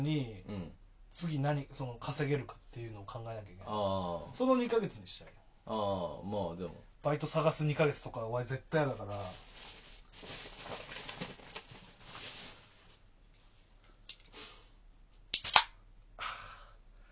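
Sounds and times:
speech: 0:00.0 - 0:10.8
faint rustling and shuffling in a quiet room: 0:08.8 - 0:15.3
beer can cracking open with a click and hissing fizz: 0:15.4 - 0:15.7.

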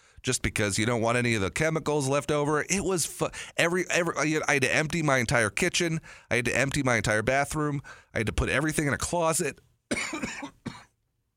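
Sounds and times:
speech: 0:00.2 - 0:10.4
harsh coughs: 0:09.9 - 0:11.0.

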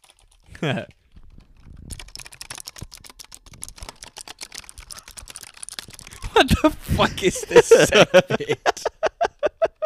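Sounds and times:
rapid typing on a computer keyboard with a funky-sounding space bar: 0:00.0 - 0:06.7
speech: 0:00.6 - 0:01.0, 0:06.4 - 0:08.9
laughter: 0:06.2 - 0:09.8.

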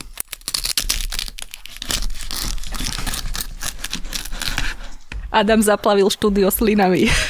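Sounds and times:
knife sawing through crispy pork crackling of a porchetta: 0:00.0 - 0:05.2
speech: 0:05.4 - 0:07.2.

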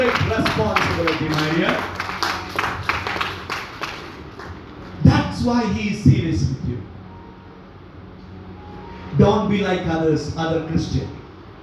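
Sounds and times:
audience clapping in a steady rhythm: 0:00.0 - 0:05.0
speech: 0:05.4 - 0:07.0, 0:09.2 - 0:11.2.

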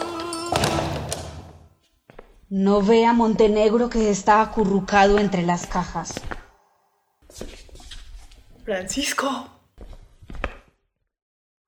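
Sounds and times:
door opening with a drawn-out creak: 0:00.0 - 0:01.6
speech: 0:02.5 - 0:06.4, 0:08.7 - 0:09.6.

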